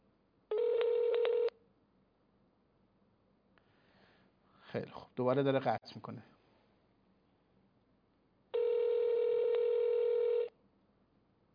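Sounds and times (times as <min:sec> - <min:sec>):
steady electronic telephone tone: 0:00.5 - 0:01.5, 0:08.6 - 0:10.5
speech: 0:04.7 - 0:06.4.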